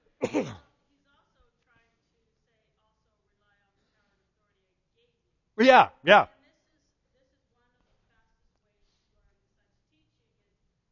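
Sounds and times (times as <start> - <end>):
cough away from the microphone: 0.0 - 0.7
speech: 0.2 - 0.7, 5.6 - 6.3.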